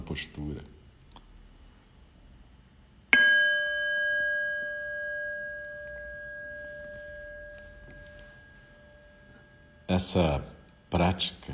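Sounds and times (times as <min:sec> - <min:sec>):
speech: 0:00.1 - 0:00.8, 0:09.9 - 0:11.5
meditation bell struck to end a meditation period: 0:03.1 - 0:11.0.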